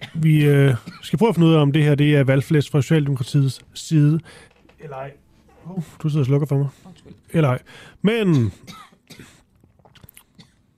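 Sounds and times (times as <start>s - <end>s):
speech: 0.2s - 9.3s
person coughing: 8.3s - 9.4s.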